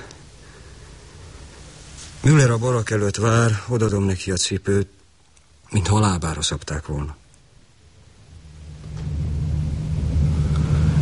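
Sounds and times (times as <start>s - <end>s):
speech: 2.2s - 5.0s, 5.7s - 7.2s
trucks heading to the front line droning: 8.4s - 11.0s.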